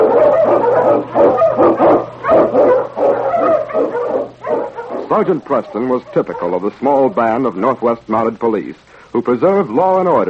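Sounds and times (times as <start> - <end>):
Eskimo lead sled dog, a Malamute, barking: 0.0 - 6.7
faint low hum: 0.0 - 10.2
speech: 5.2 - 10.2.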